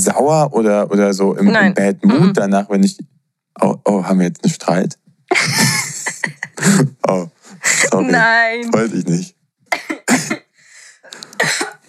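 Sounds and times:
speech: 0.0 - 10.4
laughter: 5.3 - 8.2
person coughing: 9.8 - 10.5, 11.3 - 11.8.

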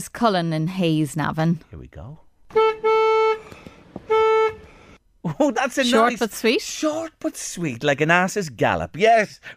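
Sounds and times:
speech: 0.0 - 2.6, 5.2 - 9.5
car horn honks: 2.5 - 4.9.

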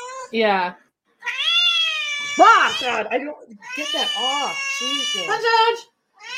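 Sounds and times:
speech: 0.3 - 1.4, 2.3 - 5.9
kitten meowing: 1.2 - 5.6, 6.2 - 6.3.

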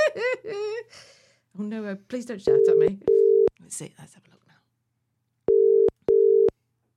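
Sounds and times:
speech: 0.2 - 4.4
phone ringing with an incoming call: 2.5 - 3.5, 5.5 - 6.5.

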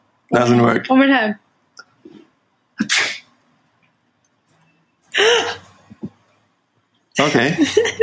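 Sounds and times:
speech: 0.3 - 1.4, 7.2 - 8.0
person fake sneezing at a cat: 2.8 - 3.2, 5.2 - 5.6
laughter: 7.2 - 8.0.

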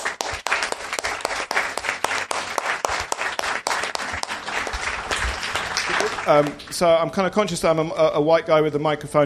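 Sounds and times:
crowd applauding: 0.0 - 7.0
speech: 6.3 - 9.2.

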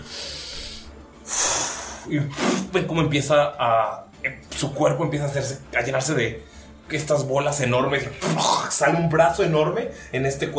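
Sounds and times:
deep breath drawn in and airy exhale: 0.0 - 2.7
speech: 2.1 - 10.5.

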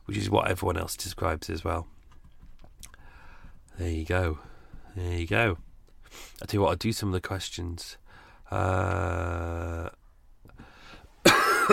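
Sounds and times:
speech: 0.1 - 2.0, 3.8 - 10.0
sharp harsh cough: 11.2 - 11.7
low voiced throat-clearing rumble: 11.3 - 11.7.

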